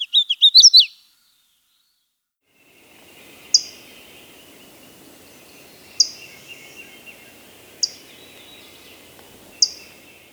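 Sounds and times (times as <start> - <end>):
Hooded warbler sharp high metallic chip notes: 2.8 - 10.3.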